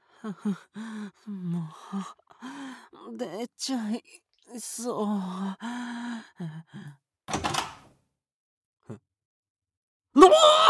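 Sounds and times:
brief wordless vocal sounds: 0:00.2 - 0:07.0
speech: 0:00.2 - 0:07.5, 0:08.9 - 0:09.1, 0:10.2 - 0:10.6
door yanked open: 0:07.3 - 0:07.9.

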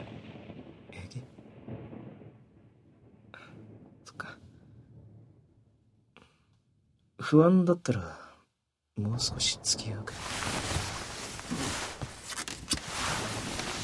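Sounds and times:
distant thunder rumbling: 0:00.0 - 0:05.9, 0:09.0 - 0:13.8
speech: 0:07.3 - 0:08.2, 0:09.0 - 0:10.7.

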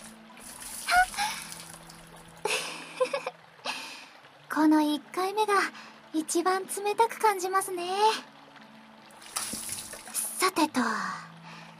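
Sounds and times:
water poured to rinse sweat off the body: 0:00.0 - 0:03.2, 0:09.1 - 0:10.5
water trickling: 0:00.0 - 0:11.7
speech: 0:04.6 - 0:08.3, 0:10.5 - 0:11.2.

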